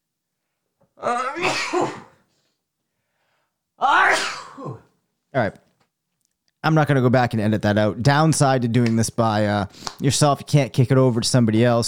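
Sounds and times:
speech: 0:01.0 - 0:02.1, 0:05.4 - 0:05.6, 0:06.6 - 0:11.8
person sneezing: 0:01.0 - 0:02.3, 0:03.9 - 0:04.9.

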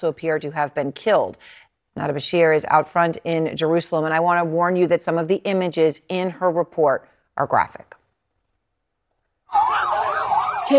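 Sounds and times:
speech: 0:00.0 - 0:08.0
ambulance siren wailing at Jabalia refugee camp in Gaza after an airstrike: 0:09.5 - 0:10.7.

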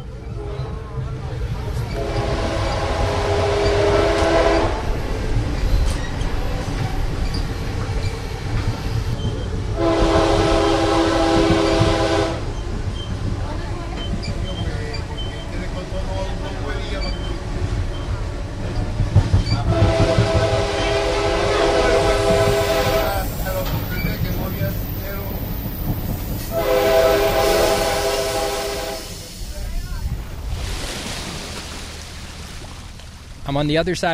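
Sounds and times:
passenger train rumbling along the rails through jungle beside a canal: 0:00.0 - 0:34.1
train horn blasts: 0:01.9 - 0:05.0, 0:09.8 - 0:12.6, 0:19.6 - 0:23.3, 0:26.5 - 0:29.2
speech: 0:33.6 - 0:34.1.

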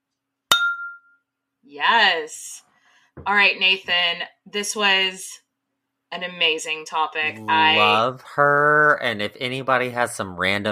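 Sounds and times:
glasses clinking in a toast: 0:00.5 - 0:01.1
speech: 0:01.6 - 0:05.4, 0:06.1 - 0:10.6.

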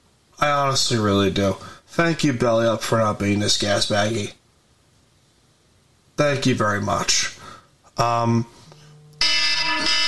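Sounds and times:
speech: 0:00.4 - 0:04.4, 0:06.2 - 0:07.3, 0:08.0 - 0:08.6
electronic alarm: 0:08.7 - 0:10.0.

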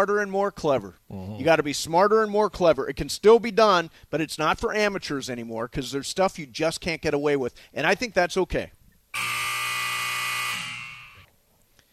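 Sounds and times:
speech: 0:00.0 - 0:09.3
loud electronic buzzer signalling a break: 0:09.2 - 0:11.3.

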